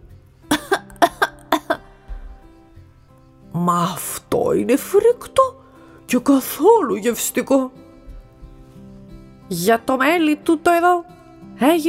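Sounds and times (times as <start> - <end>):
loud coughing: 0.5 - 1.9
speech: 3.6 - 5.5, 6.1 - 7.8, 9.5 - 11.8.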